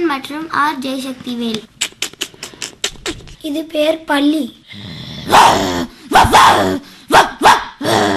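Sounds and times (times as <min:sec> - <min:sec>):
speech: 0:00.0 - 0:01.8, 0:03.4 - 0:05.7, 0:06.3 - 0:08.1
school student imitating an aggressive snarling fighting dog barking: 0:05.3 - 0:08.1.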